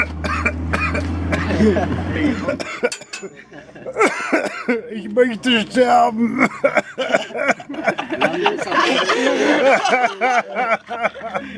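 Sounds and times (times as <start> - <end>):
harsh repeated coughing fit: 0.0 - 4.9, 6.2 - 10.1
laughter: 1.3 - 5.0, 5.9 - 11.5
speech: 1.6 - 11.5.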